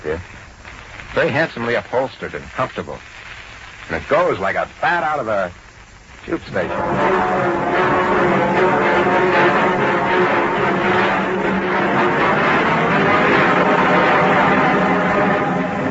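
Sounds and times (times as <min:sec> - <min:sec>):
speech: 0:00.0 - 0:00.4, 0:01.1 - 0:03.1, 0:03.9 - 0:05.6, 0:06.2 - 0:08.0
large passenger train rolling into a station: 0:06.5 - 0:15.8.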